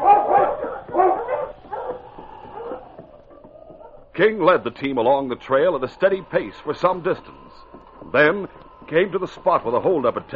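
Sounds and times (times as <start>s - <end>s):
husky barking and yelping: 0.0s - 4.1s
speech: 4.2s - 10.3s.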